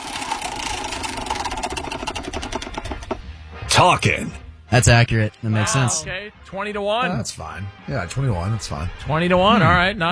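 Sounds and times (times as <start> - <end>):
prize wheel spinning during a game: 0.0 - 3.3
speech: 3.8 - 10.1.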